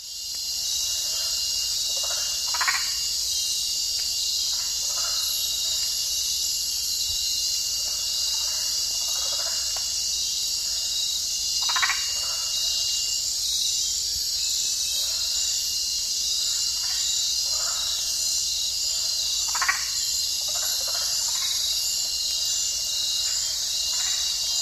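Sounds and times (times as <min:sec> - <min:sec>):
high-pitched insect chorus in the Ecuadorian Amazon: 0:00.0 - 0:24.6
Yasuni treefrog calling in the Ecuadorian Amazon: 0:00.9 - 0:03.1, 0:04.5 - 0:05.9, 0:07.8 - 0:09.8, 0:11.6 - 0:13.1, 0:16.4 - 0:24.6.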